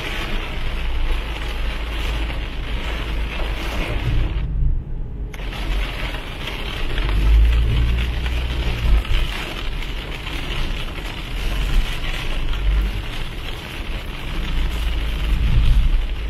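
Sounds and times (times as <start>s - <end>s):
car engine and road rumble while driving in the rain: 0.0s - 16.2s
rain hiss while driving: 0.0s - 16.2s.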